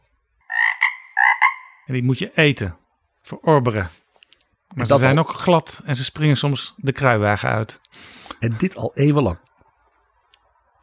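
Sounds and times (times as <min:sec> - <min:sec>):
frog raspy pulsing double croak: 0:00.4 - 0:02.0
speech: 0:01.9 - 0:04.0, 0:04.7 - 0:09.5.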